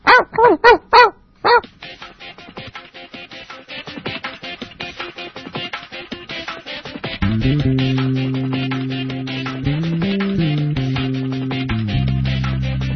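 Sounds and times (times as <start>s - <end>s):
dog barking: 0.0s - 1.7s
steady droning tone: 7.2s - 12.8s.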